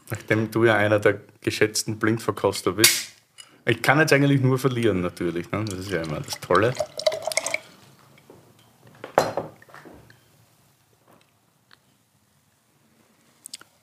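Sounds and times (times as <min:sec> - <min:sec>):
speech: 0:00.1 - 0:03.1, 0:03.7 - 0:07.0
sparkling wine poured into a glass: 0:05.4 - 0:07.8.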